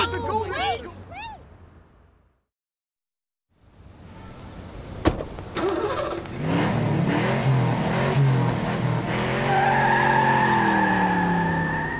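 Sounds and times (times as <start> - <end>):
voices: 0.0 - 1.4
car engine revving: 5.6 - 11.9
tires squealing and skidding: 5.6 - 11.9.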